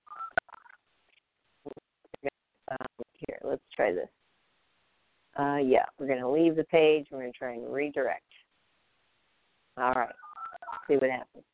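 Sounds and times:
speech: 0:03.8 - 0:04.2, 0:05.4 - 0:08.4, 0:09.8 - 0:10.2, 0:10.9 - 0:11.5
telephone keypad dialing beeps: 0:10.2 - 0:10.9.

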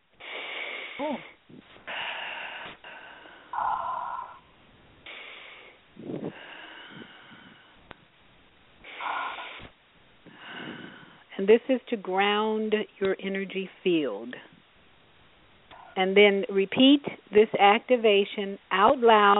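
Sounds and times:
person taking slow deep wheezy breaths: 0:00.2 - 0:04.4, 0:05.0 - 0:07.9, 0:08.8 - 0:11.3
speech: 0:01.0 - 0:01.9, 0:11.4 - 0:14.5, 0:16.0 - 0:19.3.

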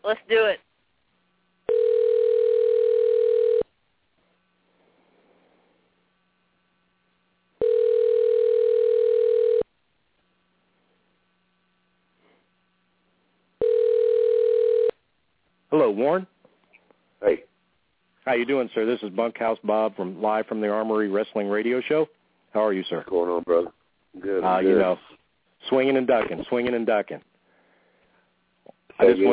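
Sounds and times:
speech: 0:00.1 - 0:00.6, 0:16.0 - 0:16.3, 0:18.3 - 0:25.1, 0:25.7 - 0:27.3, 0:29.0 - 0:29.3
telephone line ringing heard through the earpiece: 0:01.7 - 0:03.7, 0:07.6 - 0:09.6, 0:13.6 - 0:15.0.

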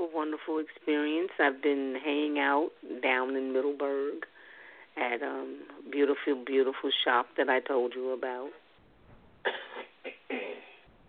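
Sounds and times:
speech: 0:00.2 - 0:04.3, 0:05.0 - 0:08.6
dry raspy coughs from a smoker with a congested chest: 0:09.4 - 0:10.9.

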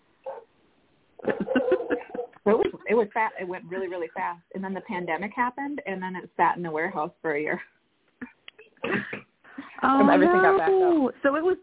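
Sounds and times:
dog barking: 0:00.2 - 0:00.5, 0:01.2 - 0:02.3
laughter: 0:01.2 - 0:02.4, 0:09.9 - 0:10.8
speech: 0:02.5 - 0:07.8, 0:09.8 - 0:11.6.

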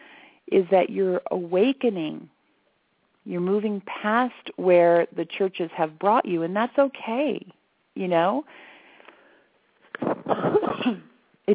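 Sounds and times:
soft breath: 0:00.0 - 0:00.4, 0:08.5 - 0:10.2
speech: 0:00.5 - 0:02.4, 0:03.2 - 0:08.7, 0:10.9 - 0:11.5
harsh coughing: 0:10.0 - 0:11.2.

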